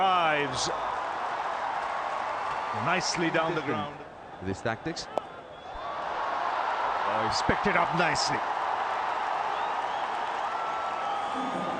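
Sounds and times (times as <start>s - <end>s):
speech: 0.0s - 1.0s, 2.8s - 5.2s, 7.2s - 8.6s
cricket stadium crowd applauding: 0.0s - 3.9s, 5.8s - 11.7s
cricket stadium crowd cheering: 0.0s - 11.7s
faint whistles from cricket stadium crowd: 5.2s - 5.9s, 9.5s - 11.7s.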